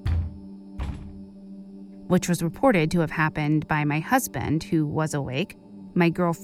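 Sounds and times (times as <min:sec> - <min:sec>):
heavy dull bangs on a door: 0:00.0 - 0:01.3
speech: 0:02.1 - 0:06.4.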